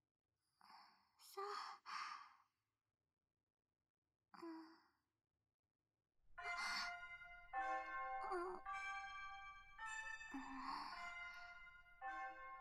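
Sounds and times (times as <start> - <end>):
soft breathy sighs: 0.6 - 2.4, 4.4 - 5.0, 10.3 - 11.7
school chime ringing: 6.4 - 12.5.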